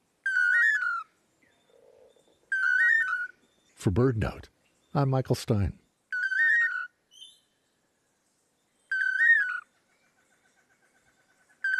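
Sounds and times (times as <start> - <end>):
long-tailed manakin toledo song whistle: 0.2 - 3.8, 6.1 - 7.6, 8.7 - 11.7
speech: 3.8 - 5.8.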